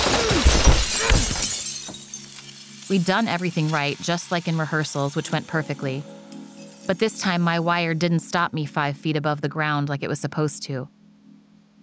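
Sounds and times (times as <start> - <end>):
glass window shattering: 0.0 - 7.6
glass fragments clattering and tinkling: 0.0 - 8.0
speech: 2.9 - 6.2, 6.9 - 11.0.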